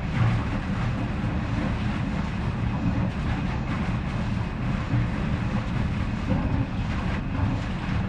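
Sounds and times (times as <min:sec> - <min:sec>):
pipe: 0:00.0 - 0:08.0.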